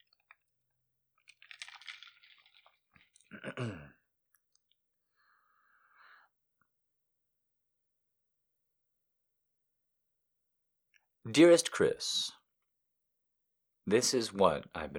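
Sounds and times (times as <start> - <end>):
sipping a drink: 1.3 - 3.9
gulp: 3.2 - 4.0
speech: 3.5 - 3.9, 11.3 - 12.4, 13.9 - 14.9.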